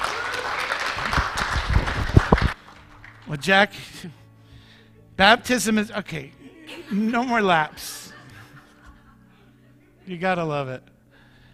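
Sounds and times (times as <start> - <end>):
crowd applauding: 0.0 - 3.4
speech: 3.3 - 4.2, 5.2 - 8.0, 10.1 - 10.9
laughter: 6.3 - 10.6.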